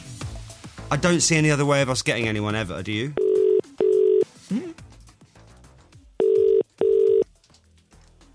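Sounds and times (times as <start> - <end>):
speech: 0.9 - 3.2
telephone line ringing tone: 3.2 - 4.2, 6.2 - 7.2.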